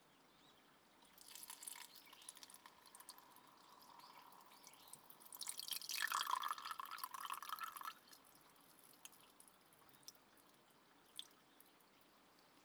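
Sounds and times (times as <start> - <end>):
water dripping: 1.1 - 11.7
hot water poured while making black tea: 1.2 - 8.1.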